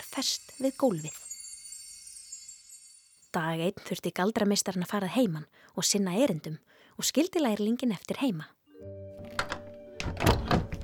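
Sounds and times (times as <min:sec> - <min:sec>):
speech: 0:00.2 - 0:01.2, 0:03.3 - 0:08.9
door closing: 0:09.2 - 0:10.8.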